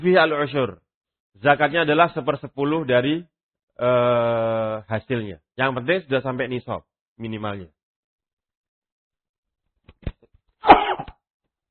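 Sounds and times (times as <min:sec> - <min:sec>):
speech: 0:00.0 - 0:00.8, 0:01.4 - 0:07.8
person sneezing: 0:10.6 - 0:11.2.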